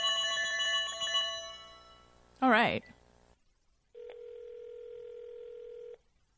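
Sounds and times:
quiet noise: 0:00.0 - 0:06.3
speech: 0:02.5 - 0:03.0
telephone dial tone while placing call: 0:04.0 - 0:06.0.

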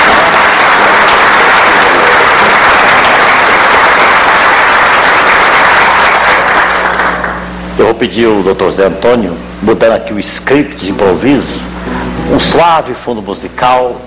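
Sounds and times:
large audience applause: 0:00.0 - 0:07.5
speech: 0:08.0 - 0:11.7, 0:12.3 - 0:14.0.

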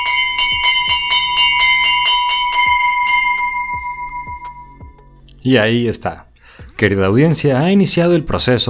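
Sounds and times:
bell ringing to signal the start of elections: 0:00.0 - 0:05.0
speech: 0:05.4 - 0:08.6.

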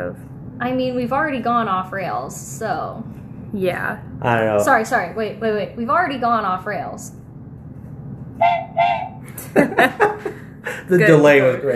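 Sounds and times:
speech: 0:00.0 - 0:07.2, 0:08.4 - 0:11.7
train whistle toots: 0:08.4 - 0:09.2
laughter: 0:09.4 - 0:10.9.

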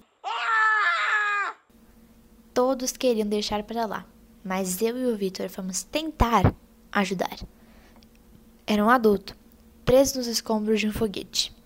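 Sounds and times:
person screaming: 0:00.1 - 0:01.7
speech: 0:02.6 - 0:07.6, 0:08.7 - 0:11.6.

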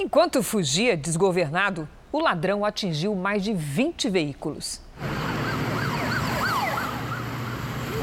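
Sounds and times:
speech: 0:00.0 - 0:05.2
traffic rumble along a major avenue in Rio de Janeiro: 0:00.0 - 0:08.0
police car sirens wailing during a chase of a stolen bus: 0:05.0 - 0:08.0.

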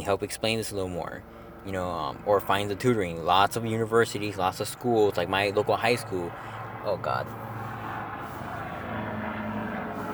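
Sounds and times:
speech: 0:00.0 - 0:07.4
military helicopter engine and rotor rumble passing overhead: 0:00.0 - 0:10.1.

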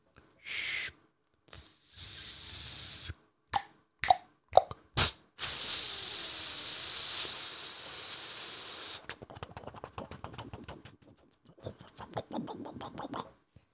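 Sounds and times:
voice imitating steady hiss of gas flame: 0:00.4 - 0:03.2, 0:04.7 - 0:13.4
voice imitating rapid bubbling pops of boiling water: 0:03.6 - 0:05.1, 0:09.0 - 0:13.4.

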